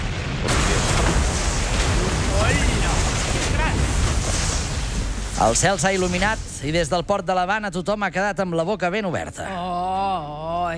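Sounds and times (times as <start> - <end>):
huge explosion of a ship: 0.0 - 7.7
speech: 5.4 - 9.9.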